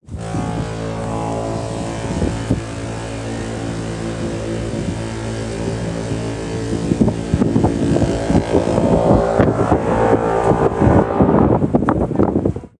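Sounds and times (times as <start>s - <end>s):
historic foghorn of a cruise ship: 0.1s - 11.8s.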